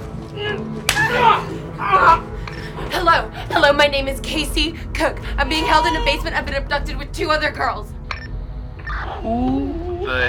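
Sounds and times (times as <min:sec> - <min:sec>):
sharp slap: 0:00.9 - 0:01.2
speech: 0:03.1 - 0:08.0, 0:09.2 - 0:10.2.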